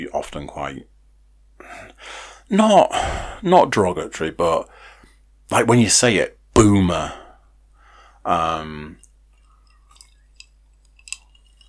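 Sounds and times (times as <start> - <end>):
speech: 0.0 - 1.0, 1.6 - 4.9, 5.5 - 7.2, 8.2 - 9.0
person sipping a drink: 9.0 - 11.6
soft wet mouth clicks: 9.0 - 11.6.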